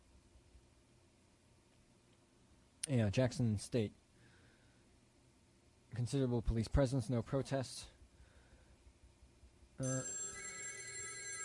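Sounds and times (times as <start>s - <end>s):
quiet hiss: 0.0s - 11.2s
speech: 2.9s - 4.0s, 6.0s - 8.0s, 9.8s - 10.2s
telephone ringing: 9.8s - 11.4s.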